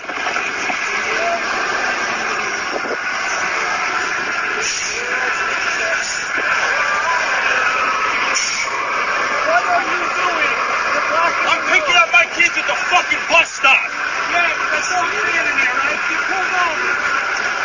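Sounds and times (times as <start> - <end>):
tow truck engine idling: 0.0 - 17.6
tow truck air-brake release: 4.6 - 5.1, 8.3 - 8.8.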